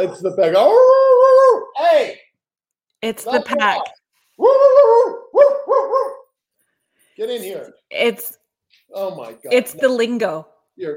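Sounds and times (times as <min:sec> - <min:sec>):
speech: 0:00.0 - 0:01.0, 0:01.9 - 0:02.2, 0:03.0 - 0:06.1, 0:07.2 - 0:10.9
dog barking: 0:04.8 - 0:06.3.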